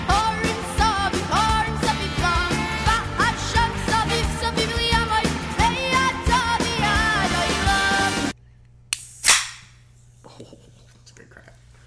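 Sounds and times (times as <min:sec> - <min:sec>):
music: 0:00.0 - 0:08.4
drink container cracked open with fizzing hiss: 0:08.9 - 0:09.8.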